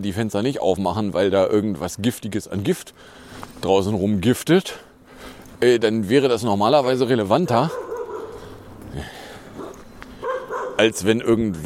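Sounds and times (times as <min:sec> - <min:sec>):
speech: 0:00.0 - 0:04.9, 0:05.6 - 0:07.8, 0:09.0 - 0:09.2, 0:10.8 - 0:11.6
low steady background: 0:00.0 - 0:11.6
dog barking and yipping: 0:07.4 - 0:08.6, 0:09.6 - 0:11.0.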